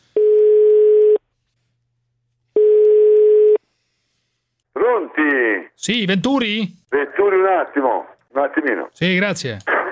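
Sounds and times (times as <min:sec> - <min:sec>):
telephone line tone on a call to a school sports centre: 0:00.2 - 0:01.2, 0:02.6 - 0:03.6
speech: 0:05.0 - 0:09.8.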